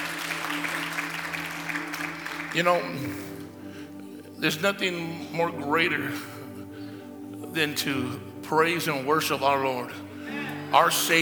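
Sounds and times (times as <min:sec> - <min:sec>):
crowd clapping: 0:00.0 - 0:03.6
speech: 0:02.5 - 0:03.3, 0:04.4 - 0:06.3, 0:07.6 - 0:10.1, 0:10.7 - 0:11.2.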